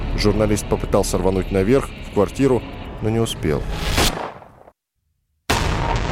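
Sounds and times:
speech: 0.2 - 4.2
loud gunshot: 3.9 - 4.5, 5.5 - 6.1.

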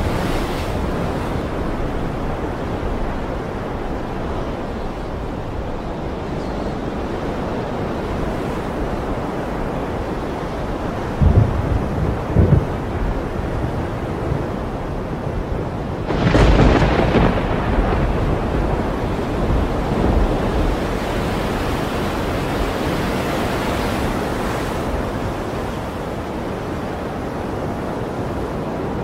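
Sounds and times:
rain near the sea: 0.0 - 29.0
surf near the sea: 0.0 - 29.0
thunder rolling with a crack: 11.2 - 14.6, 16.1 - 21.0.

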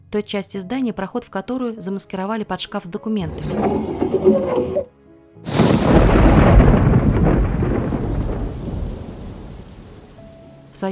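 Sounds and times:
speech: 0.1 - 5.6
thunder crack and rumble: 5.5 - 10.1
heavy rain pouring: 5.5 - 10.6.

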